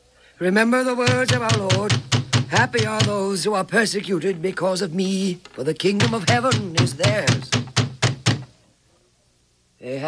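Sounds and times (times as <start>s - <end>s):
speech: 0.4s - 7.6s, 9.8s - 10.0s
guards knocking heavily on a wooden door: 1.0s - 3.4s, 5.9s - 8.6s.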